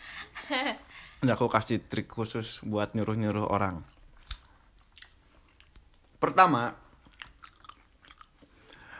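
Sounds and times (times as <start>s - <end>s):
speech: 0.5s - 4.0s, 6.2s - 6.8s
person chewing food: 3.8s - 6.1s, 6.9s - 8.9s.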